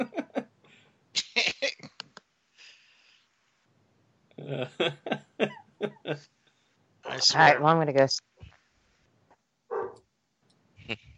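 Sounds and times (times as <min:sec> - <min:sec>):
laughter: 0:00.0 - 0:00.4, 0:04.5 - 0:06.2
speech: 0:04.5 - 0:06.4, 0:07.2 - 0:08.3
dog barking: 0:09.7 - 0:10.0.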